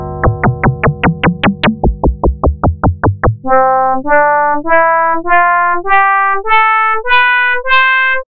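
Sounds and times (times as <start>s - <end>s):
FM synthesizer: 0.3s - 8.0s.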